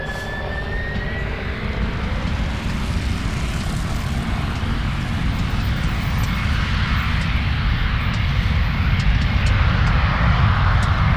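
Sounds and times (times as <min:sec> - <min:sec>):
fixed-wing airplane flying overhead with engine roar: 0:00.0 - 0:11.1.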